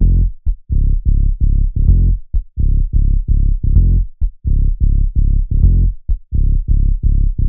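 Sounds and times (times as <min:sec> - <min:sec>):
bass loop in C minor at 128 BPM: 0:00.0 - 0:07.4.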